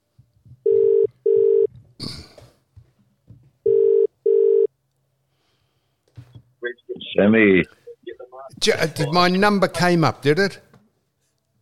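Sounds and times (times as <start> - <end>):
telephone ringing: 0.7 - 1.7, 3.6 - 4.7
speech: 7.2 - 7.8, 8.6 - 10.6.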